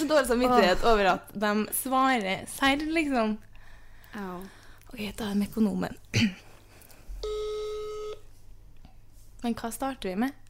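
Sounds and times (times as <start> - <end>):
speech: 0.0 - 3.5, 4.1 - 6.5, 9.4 - 10.4
telephone tone as a call is being dialed: 7.2 - 8.2.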